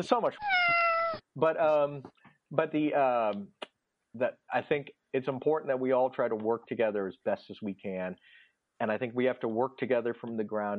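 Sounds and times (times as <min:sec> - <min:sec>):
speech: 0:00.0 - 0:03.6, 0:04.2 - 0:10.7
cats meowing: 0:00.4 - 0:01.2.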